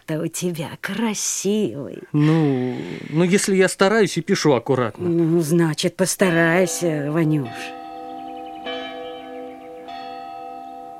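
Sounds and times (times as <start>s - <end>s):
speech: 0.1s - 7.8s
school bell ringing: 6.2s - 10.9s.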